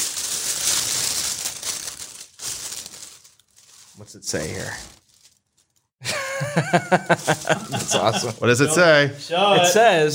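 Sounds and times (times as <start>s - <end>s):
wrapping paper crinkling and tearing as a gift is unwrapped: 0.0s - 6.0s, 7.0s - 8.6s
speech: 4.0s - 5.0s, 6.6s - 10.1s
laughter: 6.0s - 10.0s.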